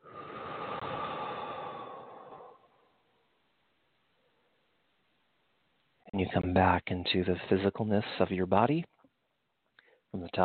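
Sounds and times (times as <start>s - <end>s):
deep breath in and out: 0.0s - 3.4s, 9.8s - 10.1s
speech: 6.2s - 8.9s, 10.1s - 10.4s.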